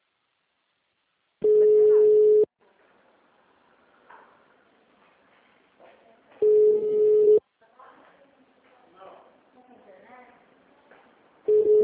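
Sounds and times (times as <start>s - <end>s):
telephone ringing tone of an outgoing call: 1.4s - 2.5s, 6.4s - 7.4s, 11.5s - 11.8s.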